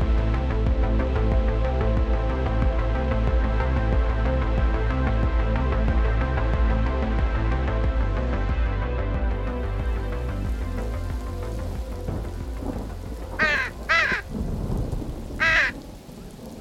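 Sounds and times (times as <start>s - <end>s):
steady low rumbling background: 0.0s - 16.5s
crow cawing inside an apartment: 13.3s - 14.3s, 15.4s - 15.9s.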